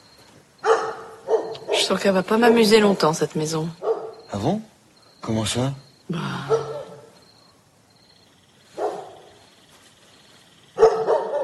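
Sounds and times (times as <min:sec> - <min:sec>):
dog barking: 0:00.6 - 0:01.9, 0:03.8 - 0:04.3, 0:06.5 - 0:07.2, 0:08.8 - 0:09.3, 0:10.8 - 0:11.4
dog yelping: 0:00.6 - 0:01.9, 0:03.8 - 0:04.3, 0:06.5 - 0:07.2, 0:10.8 - 0:11.4
speech: 0:01.8 - 0:06.5.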